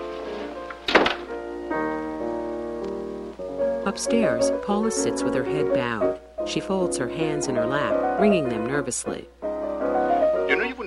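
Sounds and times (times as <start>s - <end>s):
soft sustained musical tones: 0.0s - 10.8s
door being closed: 0.8s - 1.4s
speech: 3.9s - 9.4s.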